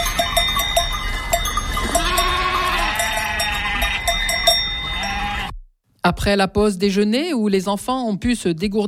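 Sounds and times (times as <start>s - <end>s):
faint bells clinking: 0.0s - 5.5s
sheep and ewes bleating: 1.8s - 5.6s
speech: 6.0s - 8.8s.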